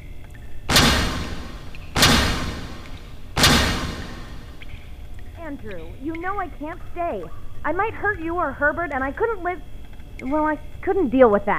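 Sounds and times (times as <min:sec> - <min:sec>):
heavy iron door thudding open in a large space: 0:00.7 - 0:04.9
speech: 0:05.5 - 0:11.5.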